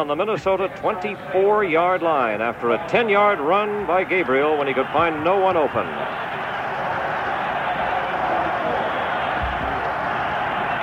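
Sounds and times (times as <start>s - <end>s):
speech: 0.0s - 6.2s
large football stadium crowd roaring and yelling in support: 0.0s - 10.8s.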